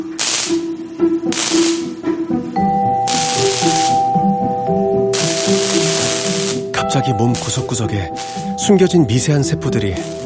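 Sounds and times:
CO2 welding sparks crackling: 0.0 - 0.7, 1.3 - 2.0, 3.1 - 4.2, 5.2 - 10.2
CO2 welder gas hissing: 0.0 - 2.1, 3.0 - 10.2
speech: 1.2 - 2.1, 7.0 - 10.2.

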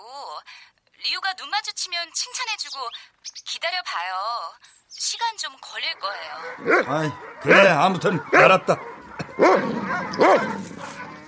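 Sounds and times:
speech: 1.0 - 10.6
dog barking loudly: 5.9 - 11.2.

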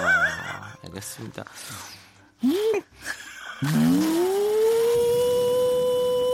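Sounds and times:
speech: 0.9 - 4.4
voice imitating a vacuum cleaner: 3.6 - 6.3.

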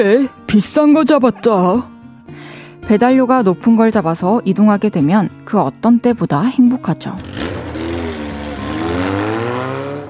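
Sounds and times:
speech: 0.0 - 1.9, 2.9 - 7.4
motorcycle engine revving: 7.1 - 10.0.

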